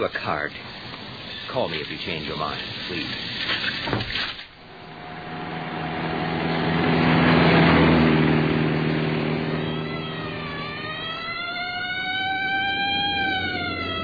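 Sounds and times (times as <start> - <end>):
speech: 0.0 - 0.8, 1.5 - 4.3
car engine revving and accelerating hard in a chase: 4.6 - 14.0.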